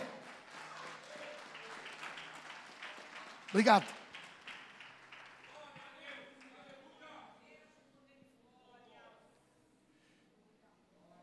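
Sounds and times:
audience applauding: 0.0s - 7.2s
speech: 3.5s - 4.0s.

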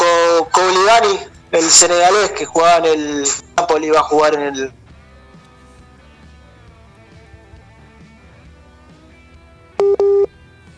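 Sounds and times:
speech: 0.7s - 4.8s
dropped phone call disconnect beeps: 9.8s - 10.3s.

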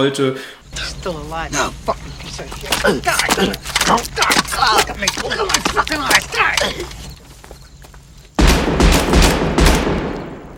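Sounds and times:
speech: 0.0s - 7.0s
pistol gunshots in a film scene: 8.4s - 10.5s.

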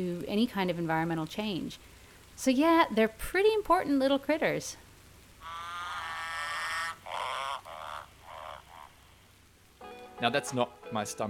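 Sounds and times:
speech: 0.0s - 4.8s, 10.2s - 11.2s
male green and golden bell frog croaking: 5.4s - 9.4s.

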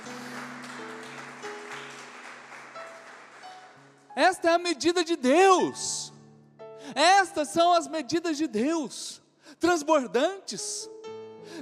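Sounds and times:
large crowd applauding: 0.0s - 4.2s
speech: 4.2s - 6.1s, 6.9s - 11.6s.

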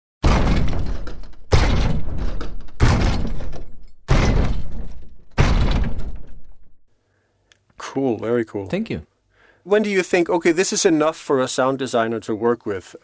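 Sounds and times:
creature stomps built from ski boots, a car door and a walking support: 0.2s - 6.7s
speech: 8.0s - 13.0s.

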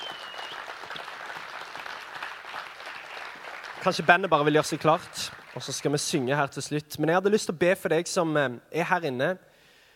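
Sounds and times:
audience applauding: 0.0s - 6.2s
speech: 3.8s - 9.5s.

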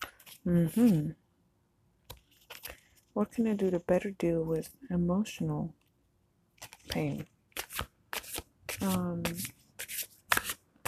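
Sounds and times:
speech: 0.4s - 1.2s, 3.2s - 5.8s, 6.9s - 7.3s, 8.8s - 9.6s
cards being shuffled for a reading: 2.1s - 3.0s, 6.6s - 10.8s.

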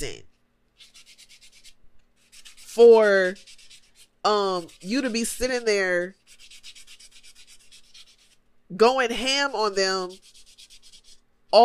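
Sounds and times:
speech: 0.0s - 0.9s, 2.8s - 3.5s, 4.2s - 6.2s, 8.7s - 10.3s
fingernail being filed: 0.8s - 8.4s, 9.7s - 11.2s.

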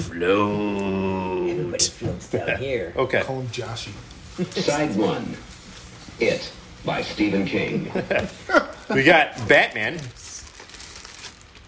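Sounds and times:
speech: 0.0s - 1.2s, 1.8s - 5.5s, 6.2s - 10.2s
toilet paper roll crinkling and rustling: 3.2s - 11.6s.

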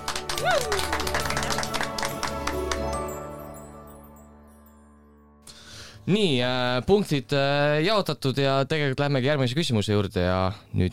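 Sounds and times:
many hands clapping in applause: 0.0s - 3.4s
person whooping: 0.3s - 1.2s
speech: 6.1s - 10.9s.

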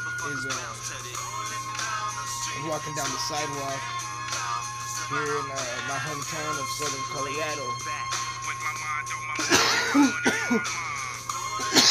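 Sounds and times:
steady outdoor hum: 0.0s - 11.8s
speech: 0.2s - 1.3s, 2.6s - 4.0s, 5.1s - 8.1s, 9.9s - 10.9s
person coughing harshly after a vape hit: 9.4s - 10.8s, 11.6s - 11.8s.

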